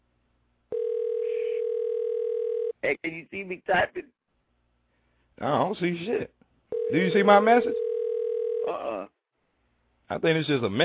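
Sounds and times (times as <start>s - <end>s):
telephone tone on a computer chat call: 0.7s - 2.8s, 6.7s - 8.8s
speech: 2.8s - 4.2s, 5.4s - 7.9s, 8.7s - 9.2s, 10.1s - 10.8s.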